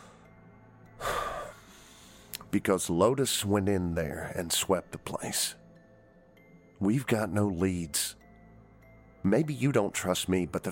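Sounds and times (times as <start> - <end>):
deep breath inhale: 1.0 - 2.4
speech: 2.5 - 5.6, 6.8 - 8.2, 9.2 - 10.7.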